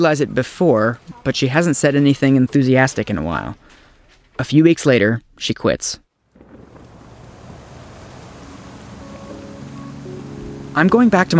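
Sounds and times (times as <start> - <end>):
speech: 0.0 - 3.6, 4.4 - 6.0, 10.8 - 11.3
rain dripping from an overhang: 6.2 - 11.3.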